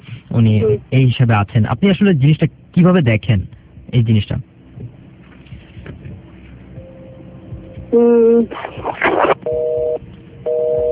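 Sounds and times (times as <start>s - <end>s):
speech: 0.4s - 4.5s, 7.9s - 9.6s
telephone busy signal beeps after a phone call is cut off: 9.4s - 10.8s.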